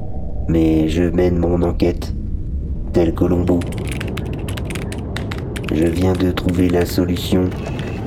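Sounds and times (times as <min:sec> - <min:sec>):
sonified BepiColombo space probe magnetic and accelerometer data as rumbling electronic hiss: 0:00.0 - 0:08.0
speech: 0:00.5 - 0:02.2, 0:02.9 - 0:04.0, 0:05.7 - 0:07.8
rapid irregular ratchet-like clicks and crackling bursts: 0:03.4 - 0:08.0.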